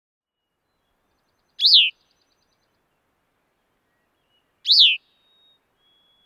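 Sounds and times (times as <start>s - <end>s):
Bicknell's thrush descending whistled calls: 1.2s - 2.8s, 3.6s - 6.2s.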